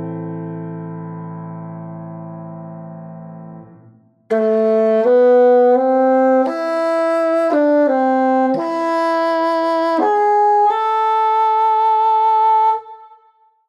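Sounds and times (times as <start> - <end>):
bassoon in A minor: 3.6 - 13.5.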